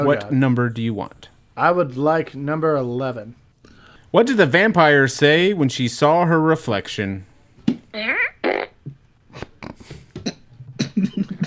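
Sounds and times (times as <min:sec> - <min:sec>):
speech: 0:00.0 - 0:03.4, 0:04.1 - 0:07.3
short loud fart sounds: 0:08.0 - 0:11.3.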